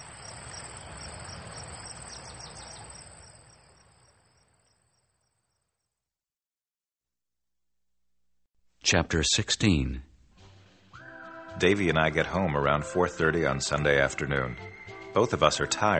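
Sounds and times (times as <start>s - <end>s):
crickets chirping at night: 0.0s - 6.0s
speech: 8.9s - 10.1s, 11.6s - 15.9s.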